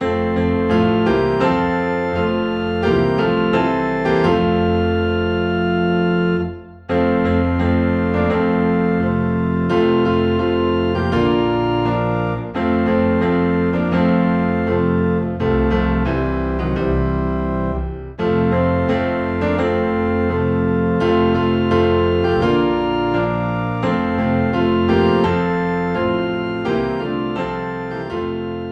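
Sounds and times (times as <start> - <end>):
low organ in F: 0.0 - 28.7
low piano in F: 0.0 - 28.7.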